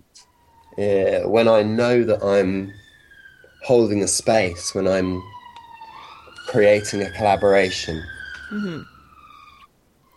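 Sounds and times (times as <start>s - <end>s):
ambulance siren passing by: 0.0s - 10.1s
speech: 0.2s - 2.8s, 3.6s - 5.4s, 6.5s - 8.9s
voice murmuring: 8.5s - 8.9s.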